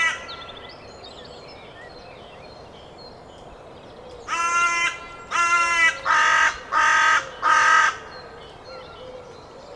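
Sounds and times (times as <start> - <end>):
carrion crow cawing: 4.3 - 8.1.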